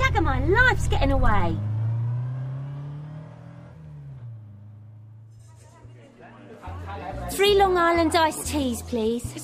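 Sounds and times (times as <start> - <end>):
car engine revving as it accelerates: 0.0 - 5.8
speech: 0.3 - 1.7, 7.4 - 9.4.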